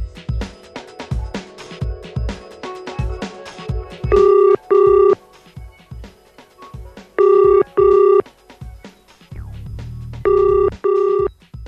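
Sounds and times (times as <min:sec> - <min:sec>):
telephone ringing with electronic trills: 0:04.1 - 0:05.2, 0:07.2 - 0:08.2, 0:10.3 - 0:11.3.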